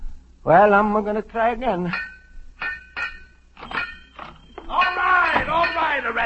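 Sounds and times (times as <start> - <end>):
speech: 0.4 - 2.1
hard metallic bangs on steam heating pipes: 1.8 - 6.2.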